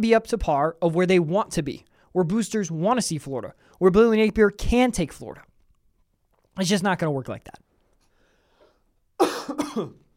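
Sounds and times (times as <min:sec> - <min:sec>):
speech: 0:00.0 - 0:05.5, 0:06.6 - 0:07.6, 0:09.5 - 0:10.0
person coughing: 0:09.2 - 0:10.1.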